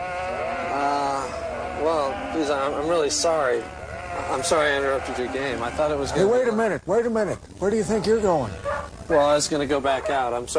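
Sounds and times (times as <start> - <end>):
sheep bleating: 0.0 - 6.3, 8.0 - 8.9
speech: 1.9 - 10.5.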